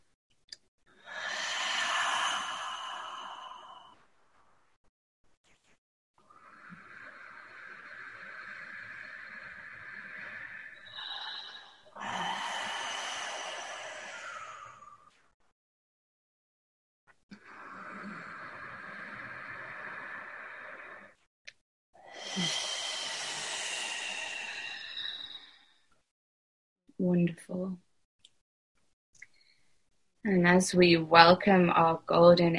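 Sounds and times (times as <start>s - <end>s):
slow deep breathing during a guided meditation: 0.9s - 4.9s, 6.2s - 15.4s, 17.3s - 21.3s, 22.0s - 26.1s
speech: 27.0s - 27.8s, 30.3s - 32.5s.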